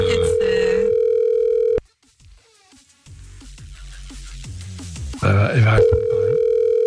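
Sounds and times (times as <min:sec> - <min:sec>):
telephone ringing tone: 0:00.0 - 0:01.8, 0:05.8 - 0:06.8
music over a phone line: 0:00.0 - 0:02.1, 0:03.1 - 0:06.8.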